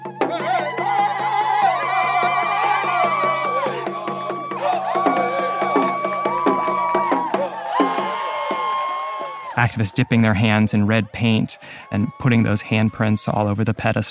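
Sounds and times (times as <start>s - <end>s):
steady drumbeats: 0.0s - 8.8s
crowd shouts and cheers: 0.0s - 14.0s
speech: 9.7s - 14.0s.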